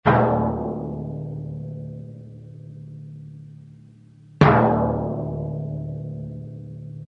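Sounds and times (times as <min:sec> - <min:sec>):
timpani slow deep notes: 0:00.1 - 0:07.1.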